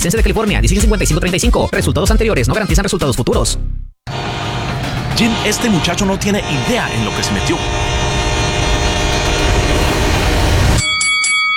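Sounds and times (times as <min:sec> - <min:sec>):
speech: 0:00.0 - 0:03.8, 0:05.2 - 0:08.0
train rumbling past with a dense low roar: 0:04.1 - 0:10.8.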